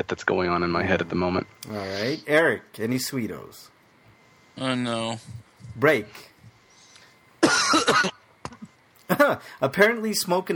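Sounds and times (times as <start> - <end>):
speech: 0.0 - 3.8, 4.6 - 6.3, 7.5 - 8.1, 9.1 - 10.5
chesty cough: 7.4 - 8.2
person clearing throat: 7.4 - 8.2.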